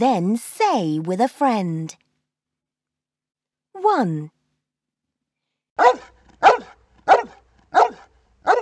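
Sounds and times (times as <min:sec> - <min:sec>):
speech: 0:00.0 - 0:02.0, 0:03.8 - 0:04.4, 0:05.8 - 0:06.1
dog barking: 0:05.8 - 0:08.6.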